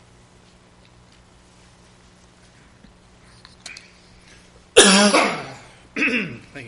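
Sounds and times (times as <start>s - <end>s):
person coughing: 4.8s - 6.5s.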